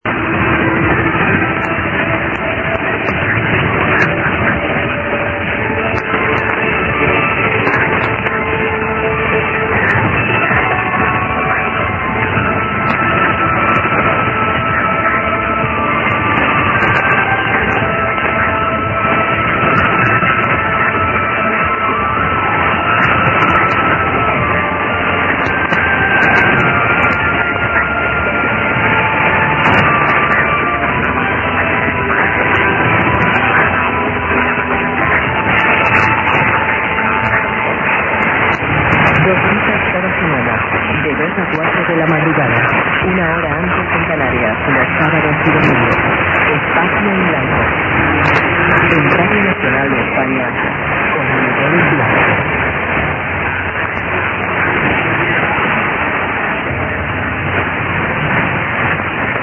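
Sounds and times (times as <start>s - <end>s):
strong radio signal from Spain: 0.0s - 59.4s.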